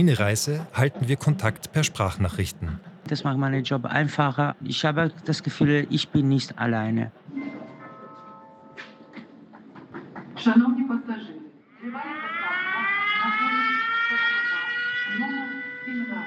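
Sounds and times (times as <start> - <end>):
voice-like sounds: 0.0 - 2.8
speech: 0.0 - 7.2, 10.4 - 12.1
air raid siren from a phone app wailing: 12.0 - 16.2.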